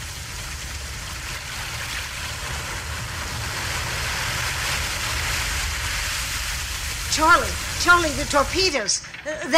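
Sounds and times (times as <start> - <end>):
rough stormy waves churning around a small boat: 0.0 - 9.5
speech: 7.2 - 9.5.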